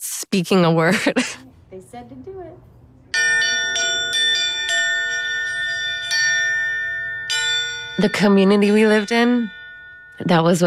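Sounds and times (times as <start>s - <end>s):
speech: 0.2s - 4.5s, 8.0s - 9.6s, 10.2s - 10.6s
bell ringing: 3.1s - 10.6s.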